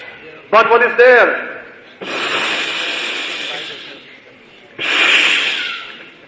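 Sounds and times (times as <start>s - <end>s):
speech: 0.5s - 2.3s
voice imitating snakes with breathy hisses: 2.0s - 4.2s, 4.8s - 6.2s.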